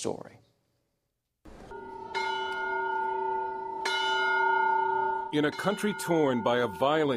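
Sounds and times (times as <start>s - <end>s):
speech: 0.0s - 0.4s, 5.3s - 7.1s
church bell ringing: 1.7s - 7.1s.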